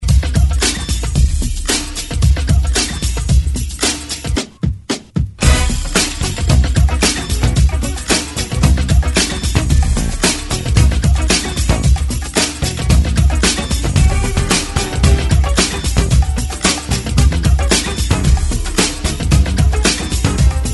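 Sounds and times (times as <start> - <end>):
70s style drum beat: 0.0 - 20.7.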